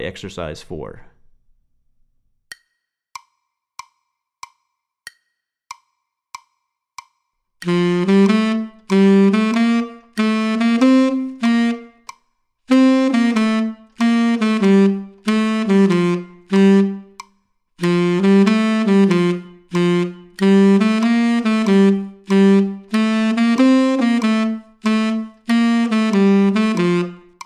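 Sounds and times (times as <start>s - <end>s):
tenor saxophone playing moving eighth notes: 7.6s - 12.2s, 12.7s - 27.4s.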